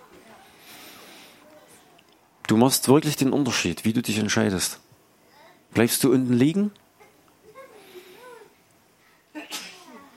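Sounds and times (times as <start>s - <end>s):
speech: 2.5s - 4.9s, 5.8s - 6.8s
person sneezing with breathy vocal build-up: 9.4s - 9.9s.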